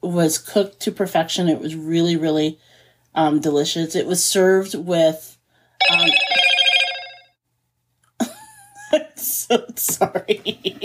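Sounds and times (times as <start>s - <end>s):
speech: 0.0s - 5.3s, 5.9s - 6.3s, 8.9s - 10.8s
mobile phone ringing with a bright electronic tone: 5.8s - 7.4s.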